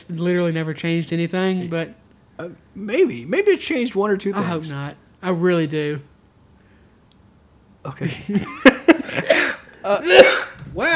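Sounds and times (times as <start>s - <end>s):
speech: 0.1s - 6.1s, 7.8s - 10.9s
laughter: 8.0s - 10.1s
coughing fit: 9.0s - 10.9s.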